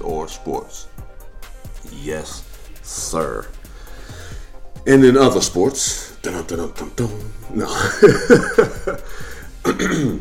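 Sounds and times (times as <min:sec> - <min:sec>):
speech: 0:00.3 - 0:01.0, 0:01.8 - 0:03.6, 0:04.8 - 0:10.1
laughter: 0:07.6 - 0:09.1
man clearing his throat: 0:09.6 - 0:10.1.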